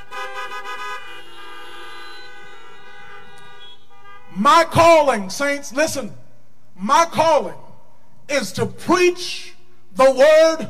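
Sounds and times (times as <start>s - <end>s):
car horns tooting: 0.0s - 5.0s
speech: 4.4s - 6.2s, 6.8s - 7.6s, 8.3s - 10.6s.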